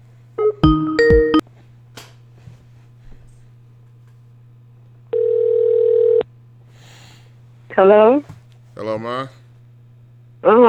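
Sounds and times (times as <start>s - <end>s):
constant low hum: 0.0s - 10.6s
Skype electronic connection chimes: 0.4s - 1.4s
Skype outgoing call ringback tone: 0.4s - 1.4s
speech: 7.8s - 9.4s, 10.4s - 10.6s.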